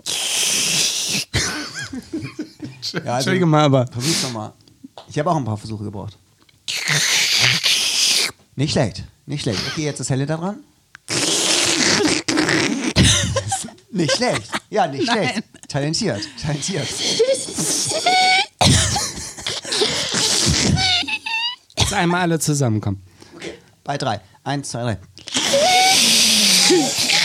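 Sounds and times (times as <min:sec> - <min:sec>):
person imitating a sucking sound with their mouth: 0:00.0 - 0:01.4, 0:06.6 - 0:08.4, 0:11.0 - 0:13.8, 0:16.4 - 0:18.5, 0:19.5 - 0:21.6, 0:25.2 - 0:27.2
laughter: 0:01.4 - 0:03.3, 0:13.0 - 0:18.4
speech: 0:02.0 - 0:06.2, 0:06.9 - 0:07.2, 0:08.6 - 0:11.2, 0:14.0 - 0:18.1, 0:22.0 - 0:23.2, 0:23.9 - 0:25.1, 0:26.7 - 0:27.0.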